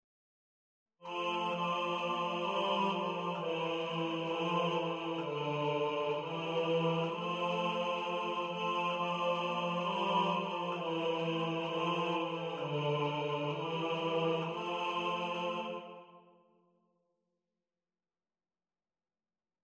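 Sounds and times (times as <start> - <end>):
voice singing a repeated line: 1.0 - 16.0.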